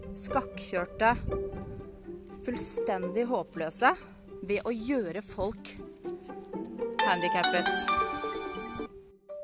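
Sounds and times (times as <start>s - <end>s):
speech: 0.2s - 1.8s, 2.4s - 8.2s
phone ringing with melodic bell-like ringtone: 7.0s - 8.9s.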